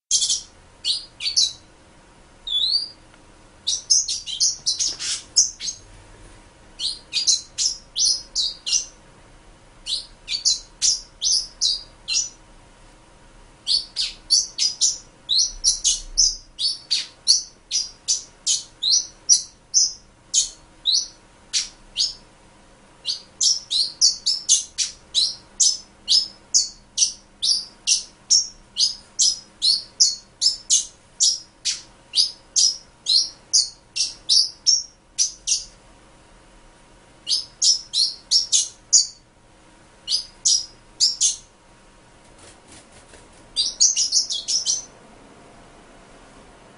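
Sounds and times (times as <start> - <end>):
pin-tailed whydah calling: 0.1 - 1.7, 2.4 - 3.0, 3.6 - 5.9, 6.8 - 9.0, 9.8 - 12.4, 13.6 - 22.2, 23.0 - 35.8, 37.2 - 39.2, 40.1 - 41.5, 43.6 - 45.0.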